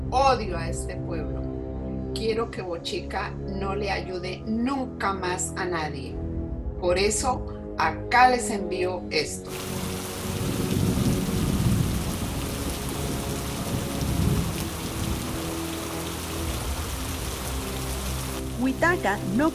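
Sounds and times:
speech: 0.1s - 1.5s, 2.1s - 6.2s, 6.8s - 10.6s, 18.6s - 19.5s
heavy rain pouring: 9.5s - 19.5s
deep rolling thunder: 9.6s - 15.4s.

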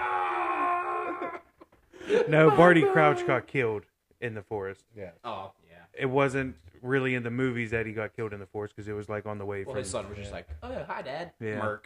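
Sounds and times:
voice imitating anguished wailing of grieving father: 0.0s - 1.5s, 2.1s - 3.5s
speech: 2.1s - 11.8s.

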